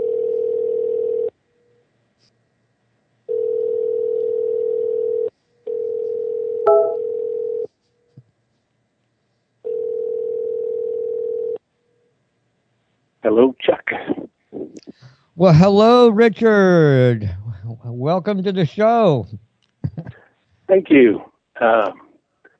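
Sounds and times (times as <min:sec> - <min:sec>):
telephone ringback tone: 0:00.0 - 0:01.3, 0:03.3 - 0:07.7, 0:09.7 - 0:11.6
speech: 0:15.4 - 0:17.4, 0:18.0 - 0:19.4, 0:20.7 - 0:22.0.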